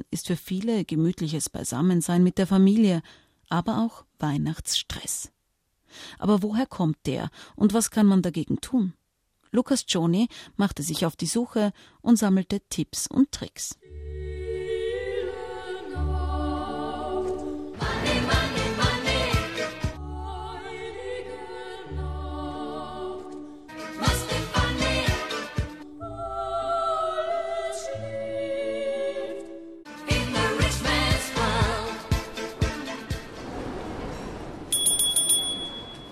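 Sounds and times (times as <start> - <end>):
speech: 0.1 - 14.2
melodic tonal backdrop: 13.8 - 33.4
small bells ringing on busy shopping street: 34.7 - 36.1.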